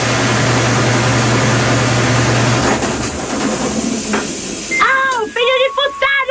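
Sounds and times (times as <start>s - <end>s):
washing machine whirring with a low hum: 0.0s - 6.2s
washing machine end-of-cycle electronic beeping melody: 4.7s - 6.2s.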